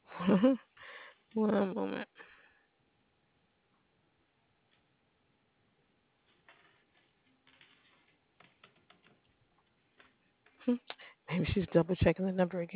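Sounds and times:
low steady hum: 0:00.0 - 0:12.7
speech: 0:00.2 - 0:00.7, 0:01.3 - 0:02.3, 0:10.7 - 0:12.7
woman typing on a computer keyboard: 0:08.4 - 0:09.4.

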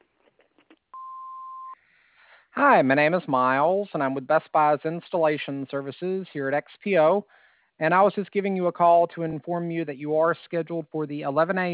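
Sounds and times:
answering machine beep: 0:01.0 - 0:01.8
quiet phone line hiss: 0:01.0 - 0:01.8
speech: 0:02.6 - 0:11.7.

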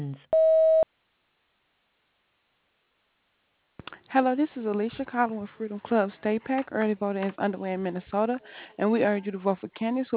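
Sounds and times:
voicemail beep: 0:00.3 - 0:00.9
speech: 0:04.1 - 0:10.1.

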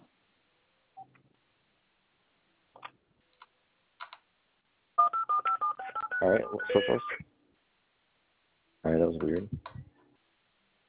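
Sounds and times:
soft clicks: 0:02.8 - 0:04.2
telephone keypad dialing tones: 0:05.0 - 0:07.2
speech: 0:06.2 - 0:07.3, 0:09.1 - 0:09.8.

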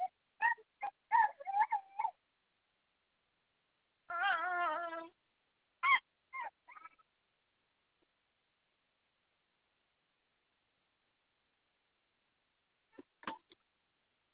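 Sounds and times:
puppy whimpering: 0:00.0 - 0:02.2, 0:04.1 - 0:05.2, 0:05.8 - 0:07.1.

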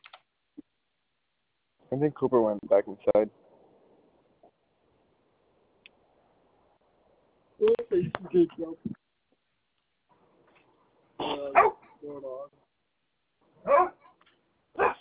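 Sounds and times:
speech: 0:01.9 - 0:03.4, 0:08.4 - 0:09.0
dog barking: 0:11.5 - 0:12.0, 0:13.6 - 0:15.0.

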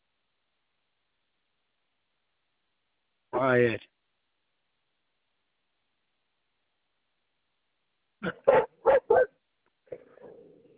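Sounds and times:
speech: 0:03.4 - 0:03.9
dog barking: 0:08.2 - 0:10.7.

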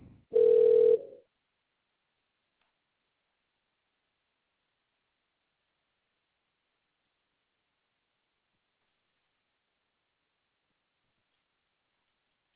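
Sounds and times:
telephone line ringing tone on a relay call: 0:00.3 - 0:01.2.

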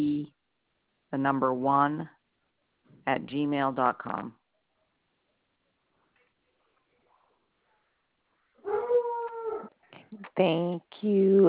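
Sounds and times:
speech: 0:01.1 - 0:02.2, 0:03.1 - 0:04.4, 0:10.3 - 0:11.4
dog howling during a phone call: 0:08.6 - 0:09.7.

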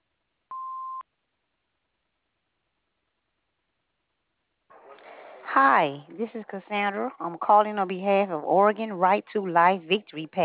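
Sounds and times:
answering machine beep: 0:00.5 - 0:01.0
speech: 0:05.6 - 0:10.4.

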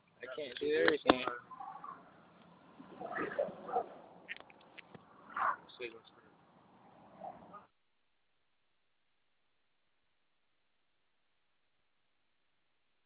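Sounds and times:
speech: 0:00.4 - 0:01.5
dogs barking and whimpering: 0:01.4 - 0:02.1, 0:02.8 - 0:04.1, 0:05.2 - 0:05.7.

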